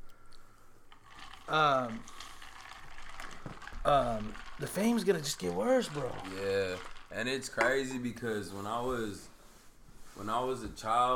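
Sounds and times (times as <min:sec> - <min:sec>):
fizzing liquid poured into a glass: 0:00.9 - 0:07.9
speech: 0:01.5 - 0:02.2, 0:03.8 - 0:09.3, 0:10.2 - 0:11.1.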